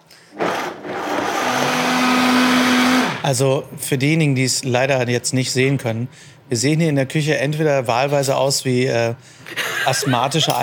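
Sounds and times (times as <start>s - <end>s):
blender mixing cashew hollandaise: 0.3s - 3.2s
speech: 3.3s - 10.6s
laughter: 9.5s - 10.6s.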